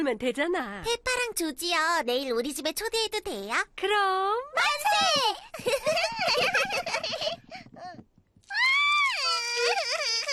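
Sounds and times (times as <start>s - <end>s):
speech: 0.0s - 8.0s
laughter: 5.6s - 7.6s
animated child character crying: 8.5s - 10.3s.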